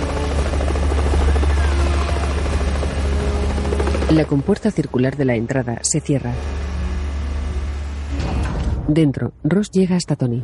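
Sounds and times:
helicopter flying in toward a huge structure in the ocean and landing: 0:00.0 - 0:09.6
speech: 0:04.1 - 0:06.8, 0:08.9 - 0:10.4.

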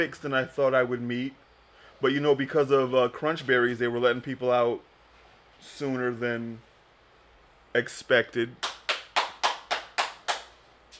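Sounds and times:
speech: 0:00.0 - 0:01.4, 0:02.0 - 0:04.9, 0:05.6 - 0:06.7, 0:07.7 - 0:08.7
audience clapping: 0:08.6 - 0:10.6.

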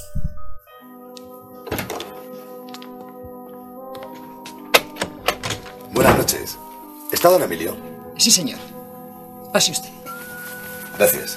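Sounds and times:
apartment door opening and closing: 0:01.5 - 0:03.2, 0:04.0 - 0:06.6
speech: 0:06.0 - 0:06.6, 0:07.2 - 0:08.8, 0:09.5 - 0:10.0, 0:11.0 - 0:11.3.

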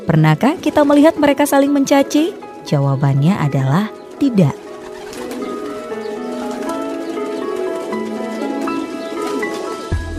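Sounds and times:
speech: 0:00.0 - 0:04.6
pigeons cooing in soft throaty overlapping calls: 0:00.0 - 0:10.1.

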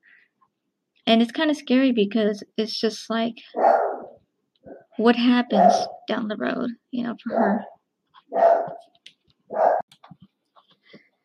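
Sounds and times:
speech: 0:01.1 - 0:03.8, 0:05.0 - 0:09.6
protective female shelter dog barking: 0:03.6 - 0:04.2, 0:05.6 - 0:06.0, 0:08.3 - 0:08.9, 0:09.5 - 0:09.9
dog yipping and snuffling: 0:08.3 - 0:08.8.

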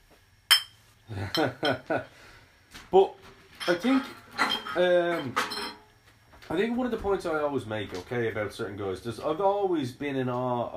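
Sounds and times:
speech: 0:01.1 - 0:05.6, 0:06.5 - 0:10.7
glass bottles clinking together: 0:03.6 - 0:05.9.

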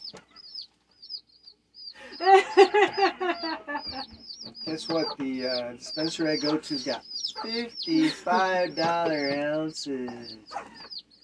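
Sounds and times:
thin high chirps: 0:00.0 - 0:11.2
laughter: 0:02.0 - 0:04.2, 0:07.5 - 0:10.3
speech: 0:02.2 - 0:10.9
rooster crowing into a microphone: 0:02.3 - 0:04.1.

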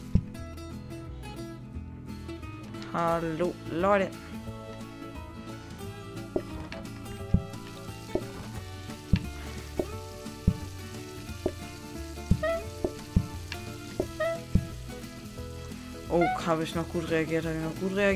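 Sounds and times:
soft thumps: 0:00.0 - 0:00.5, 0:06.3 - 0:10.8, 0:11.4 - 0:14.9
speech: 0:02.9 - 0:04.3, 0:16.4 - 0:18.1
food sizzling on a stove in a video game: 0:04.8 - 0:18.1
looping video game music: 0:05.9 - 0:16.6.

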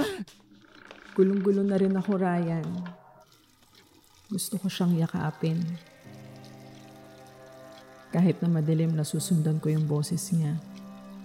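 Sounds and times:
speech: 0:01.2 - 0:03.0, 0:04.3 - 0:05.9, 0:08.1 - 0:10.8
water running into a sink: 0:02.5 - 0:11.2
faucet turned on: 0:02.6 - 0:11.2.

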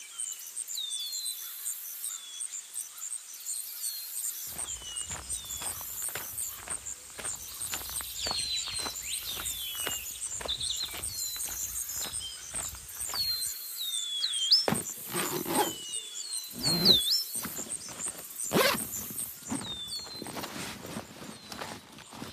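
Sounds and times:
footsteps crunching in a forest: 0:04.5 - 0:13.6, 0:14.7 - 0:15.8, 0:16.6 - 0:22.3
birds chirping and whistling overhead in a forest: 0:04.5 - 0:21.8.

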